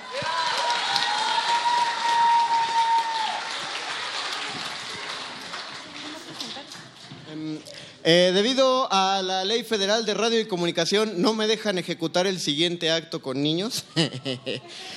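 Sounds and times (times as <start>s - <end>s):
crowd cheering: 0.0s - 7.3s
audience applauding for a magician: 0.0s - 7.4s
speech: 8.0s - 14.9s
laughter: 13.7s - 14.9s.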